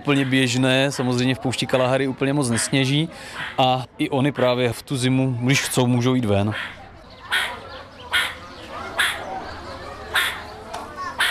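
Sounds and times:
speech: 0.0 - 7.5
meerkat alarm calls from a zoo enclosure in winter: 2.5 - 2.8, 6.5 - 9.3, 10.1 - 10.5, 11.1 - 11.3.

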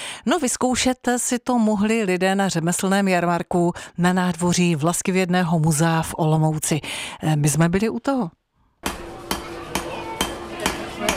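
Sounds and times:
speech: 0.2 - 8.4
hammer striking an anvil at a traditional crafts fair in Olomouc: 8.8 - 11.1.

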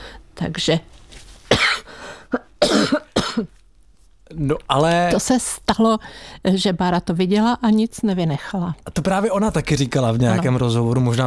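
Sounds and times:
speech: 0.4 - 1.0, 4.3 - 11.2
harsh human coughs: 1.5 - 3.6.

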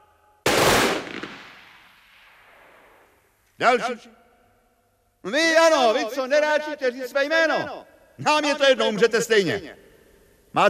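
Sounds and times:
firing squad gunfire volley: 0.5 - 3.1
speech: 3.6 - 4.2, 5.2 - 9.8.

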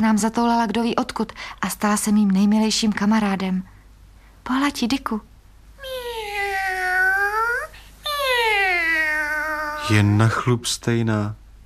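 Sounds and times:
speech: 0.0 - 3.7, 4.4 - 5.3, 9.9 - 11.4
black cat meowing: 5.8 - 10.1.

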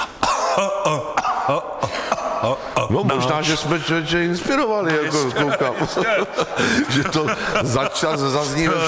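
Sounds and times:
person coughing with harsh raspy coughs: 0.0 - 2.9
speech: 0.6 - 8.8
laughter: 4.8 - 8.8.

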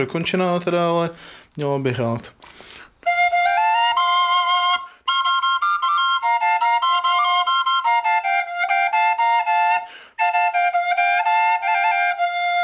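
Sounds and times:
speech: 0.0 - 2.7
double folk whistle flute playing a lively melody with a drone: 3.0 - 12.6.

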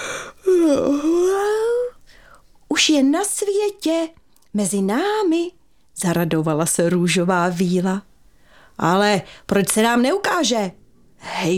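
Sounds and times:
quiet yawn: 0.0 - 2.5
speech: 2.9 - 8.1, 8.8 - 11.5.

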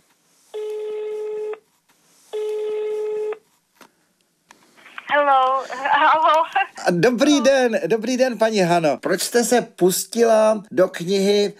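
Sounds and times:
landline telephone ringback tones: 0.6 - 1.6, 2.3 - 3.4
speech: 5.6 - 11.5.

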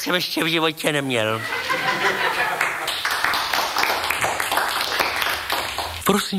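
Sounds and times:
speech: 0.0 - 2.4, 6.1 - 6.3
laughter: 0.0 - 3.2
crowd applauding: 1.6 - 6.0.

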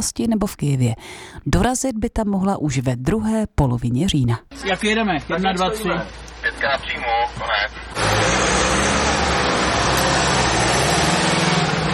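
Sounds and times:
speech: 0.0 - 8.7
engine and road noise of decommissioned ambulances driving away from an emergency service compound: 4.5 - 11.9.

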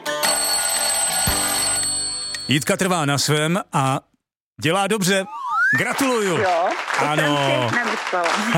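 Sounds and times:
bright chiming tones: 0.3 - 2.7
continuous rattling bell ringing to end a telephone quiz answer: 0.3 - 2.7
speech: 2.5 - 8.5.

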